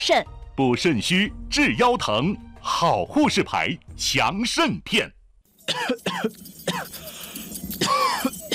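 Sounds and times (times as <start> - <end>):
speech: 0.0 - 8.5
person coughing in harsh bursts: 5.7 - 7.1, 7.8 - 8.5.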